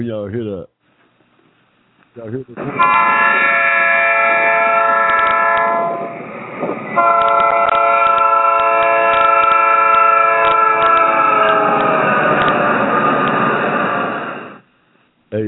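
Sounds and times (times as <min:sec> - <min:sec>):
rumbling rail noise: 0:02.3 - 0:14.7
train horn blasting a multi-note chord: 0:02.6 - 0:06.2, 0:07.0 - 0:12.6.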